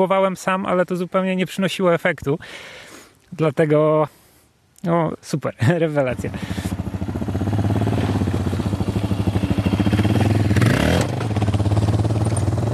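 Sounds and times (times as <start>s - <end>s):
speech: 0.0s - 4.2s, 4.8s - 6.6s
Suzuki DR650 single-cylinder touring motorcycle engine idling and revving: 6.1s - 12.7s.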